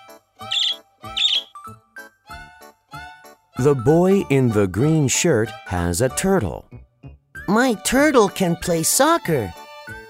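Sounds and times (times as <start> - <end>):
bird singing in warbling chirps and trills: 0.4 - 1.6
speech: 3.6 - 6.7, 7.5 - 9.6.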